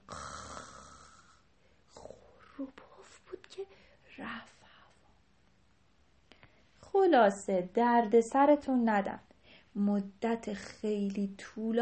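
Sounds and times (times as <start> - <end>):
voice imitating snoring: 0.0 - 2.2
speech: 2.6 - 2.8, 3.6 - 4.6, 7.0 - 11.8.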